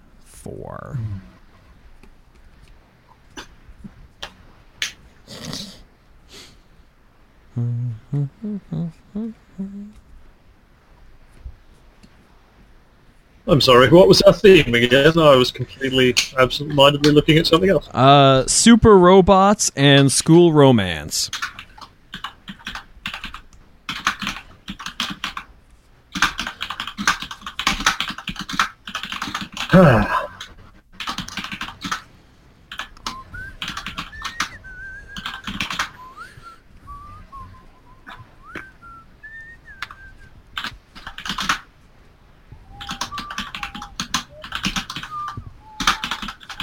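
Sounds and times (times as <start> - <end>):
speech: 0.4 - 1.4, 7.6 - 10.0, 13.5 - 21.6, 29.8 - 30.2
typing on a computer keyboard: 21.3 - 25.5, 26.1 - 29.8, 30.4 - 32.1, 32.7 - 34.5, 35.2 - 35.9, 40.6 - 41.6, 42.8 - 46.6
person whistling a wandering tune: 33.1 - 35.2, 36.0 - 40.1, 42.6 - 44.4, 45.0 - 46.2.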